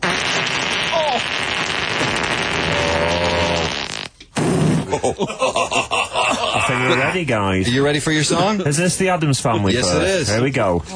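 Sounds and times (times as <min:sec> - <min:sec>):
loud drawn-out fart: 0:00.0 - 0:05.0
laughter: 0:04.9 - 0:07.2
speech: 0:05.1 - 0:05.6, 0:06.8 - 0:10.9.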